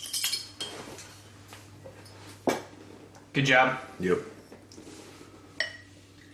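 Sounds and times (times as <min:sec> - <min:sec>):
glass bottle clinking: 0:00.0 - 0:00.7
speech: 0:03.4 - 0:04.4.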